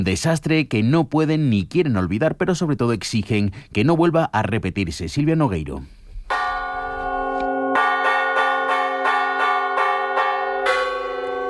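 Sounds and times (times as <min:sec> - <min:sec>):
speech: 0:00.0 - 0:06.0
church bells ringing to signal a fire: 0:06.3 - 0:11.4.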